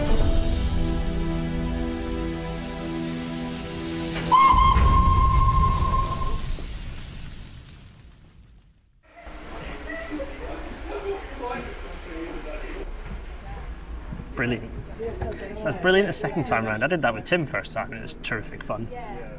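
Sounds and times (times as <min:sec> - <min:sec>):
steam locomotive idling with a low rumble: 0:00.0 - 0:06.5, 0:09.2 - 0:16.1
hissing steam from a steam locomotive: 0:00.2 - 0:07.6
steam locomotive whistle blast: 0:00.3 - 0:06.5
speech: 0:15.8 - 0:19.3.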